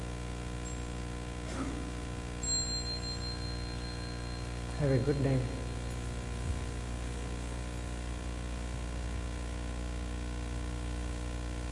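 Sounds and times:
steady low hum: 0.0s - 11.6s
small bell ringing: 0.6s - 1.2s, 2.1s - 7.6s
speech: 4.8s - 5.6s.

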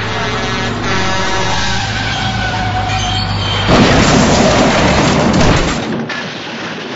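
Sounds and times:
truck exploding, breaking its grate: 0.0s - 6.0s
heavy truck rumbling and whining with a metallic grinding drone: 0.0s - 6.9s.

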